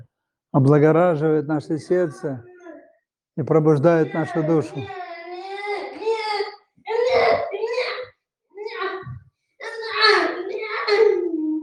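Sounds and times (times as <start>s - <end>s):
speech: 0.5s - 2.5s, 3.4s - 5.0s
young boy crying and whining: 1.8s - 3.0s, 3.8s - 11.6s.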